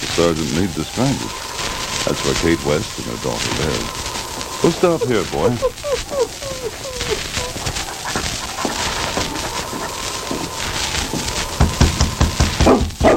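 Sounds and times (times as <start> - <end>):
busy rustling background: 0.0 - 13.1
speech: 0.2 - 6.8
laughter: 0.4 - 12.2
dog whining in short rising yelps: 0.4 - 12.8
dog barking: 12.6 - 13.1.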